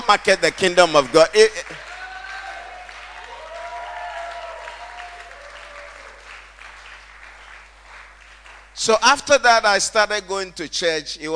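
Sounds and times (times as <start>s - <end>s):
audience clapping: 0.0s - 8.8s
speech: 0.1s - 1.8s, 8.8s - 11.3s.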